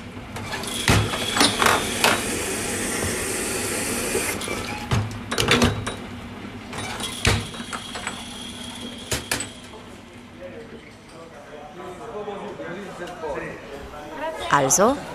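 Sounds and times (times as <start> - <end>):
espresso machine hissing and humming in an Italian coffee bar: 0.6 - 4.9, 7.0 - 9.9
customers chatting in a coffee bar: 9.9 - 15.1
speech: 14.6 - 15.1.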